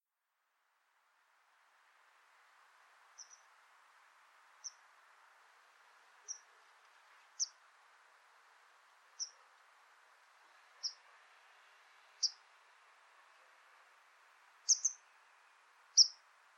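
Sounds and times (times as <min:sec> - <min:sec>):
faint background hiss: 0:00.1 - 0:16.5
white wagtail calling: 0:03.2 - 0:03.5, 0:07.4 - 0:07.6, 0:09.2 - 0:09.4, 0:10.8 - 0:11.0, 0:12.2 - 0:12.4, 0:14.7 - 0:15.0, 0:16.0 - 0:16.2.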